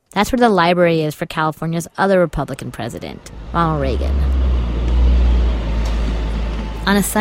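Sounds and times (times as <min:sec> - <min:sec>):
speech: 0:00.2 - 0:04.4, 0:06.8 - 0:07.2
school bus engine idling: 0:02.5 - 0:07.2.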